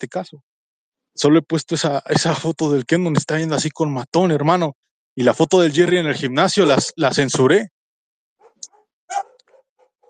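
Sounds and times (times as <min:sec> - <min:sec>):
speech: 0:00.0 - 0:00.5, 0:01.2 - 0:07.8
excited dogs barking and yelping: 0:08.4 - 0:10.0.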